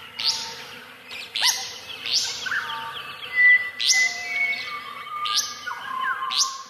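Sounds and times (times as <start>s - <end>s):
Restless Flycatcher song with rasping rising sweeps: 0.0s - 6.6s
other birds whistling and chirping: 0.0s - 6.6s.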